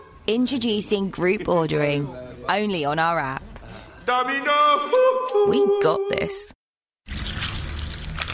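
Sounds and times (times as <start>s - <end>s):
speech: 0.3s - 6.5s
milk pouring into a container: 7.1s - 8.3s.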